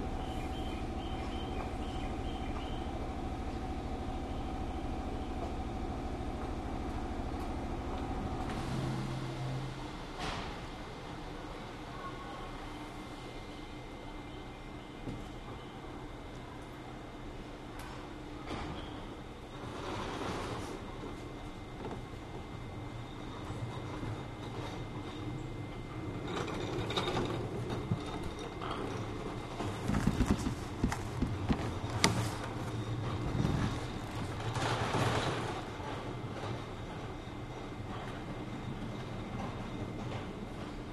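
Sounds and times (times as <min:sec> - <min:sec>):
train idling at a station platform: 0:00.0 - 0:18.4, 0:19.1 - 0:40.9
clunks and knocks: 0:26.4 - 0:40.7.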